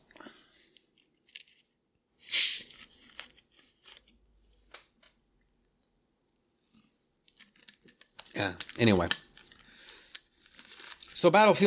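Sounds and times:
slurp of fizzy soda: 0:02.2 - 0:02.8
speech: 0:08.4 - 0:09.2, 0:11.2 - 0:11.6.

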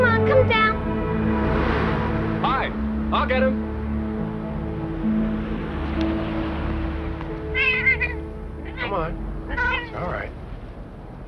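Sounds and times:
low rumbling hum: 0:00.0 - 0:11.2
speech: 0:03.2 - 0:03.7
cat on a high spot meowing: 0:07.5 - 0:10.3.

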